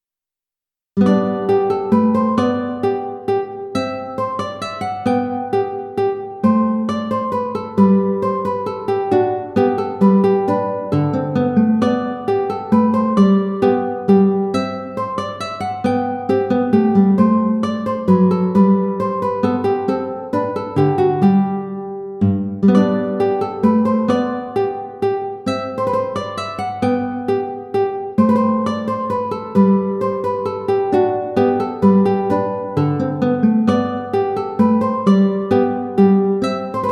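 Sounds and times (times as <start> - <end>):
guitar playing a minuet: 1.0 - 36.9.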